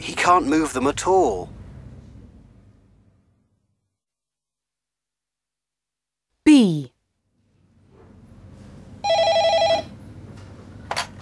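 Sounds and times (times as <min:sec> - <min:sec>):
speech: 0:00.0 - 0:01.6, 0:06.6 - 0:06.9
telephone bell ringing: 0:09.0 - 0:10.0.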